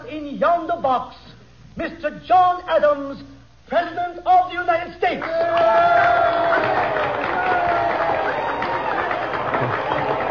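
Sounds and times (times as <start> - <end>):
speech: 0.4 - 1.2, 1.8 - 7.3
large crowd cheering and applauding: 5.2 - 10.2.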